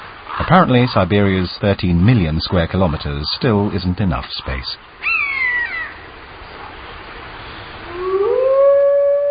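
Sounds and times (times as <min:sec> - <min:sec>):
speech: 0:00.5 - 0:04.9
pack of wolves in Siberia howling together: 0:07.8 - 0:09.2.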